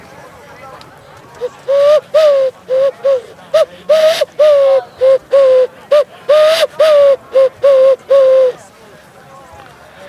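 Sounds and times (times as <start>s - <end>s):
person imitating wood pigeon cooing: 1.4s - 8.6s.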